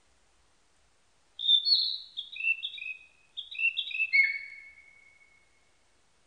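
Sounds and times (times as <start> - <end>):
Narcissus flycatcher whistled song: 1.4 - 5.5.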